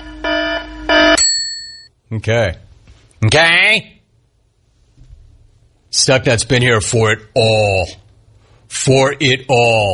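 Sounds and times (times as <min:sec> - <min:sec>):
harsh buzzing alarm tones: 0:00.0 - 0:01.2
speech: 0:02.1 - 0:02.6, 0:03.2 - 0:04.0, 0:05.9 - 0:08.0, 0:08.7 - 0:09.9.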